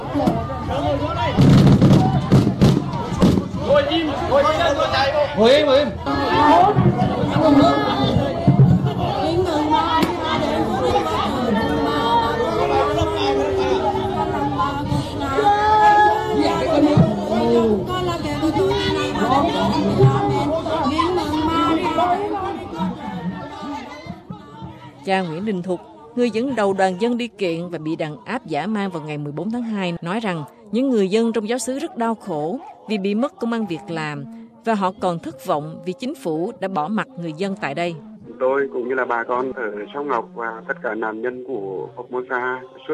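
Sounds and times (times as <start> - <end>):
chaotic crowd shouting and chattering: 0.0 - 42.9
speech: 0.1 - 1.5, 3.8 - 8.2, 25.1 - 42.9
gunshot-like bangs: 1.4 - 3.6.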